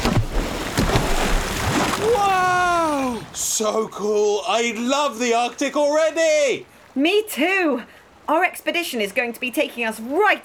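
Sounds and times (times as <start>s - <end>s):
humpback whales breaching and splashing water: 0.0s - 3.5s
speech: 3.4s - 10.4s.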